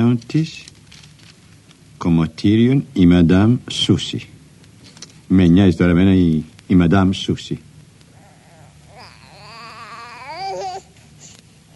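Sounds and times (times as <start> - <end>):
speech: 0.0 - 0.7, 2.0 - 4.3, 5.3 - 7.7
faint low hum: 0.0 - 11.7
baby crying in a wavering rising wail: 8.1 - 10.9
baby whimpering: 8.1 - 11.7.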